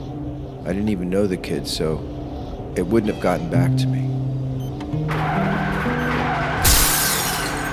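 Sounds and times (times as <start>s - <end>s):
speech: 0.7s - 2.2s, 2.8s - 5.5s
car tires skidding across pavement: 5.0s - 7.7s
car hitting a person: 6.6s - 7.7s.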